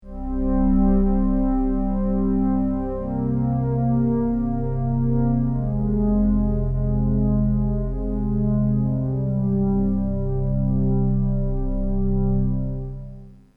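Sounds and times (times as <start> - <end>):
Memorymoog synthesizer pad: 0.0 - 13.4.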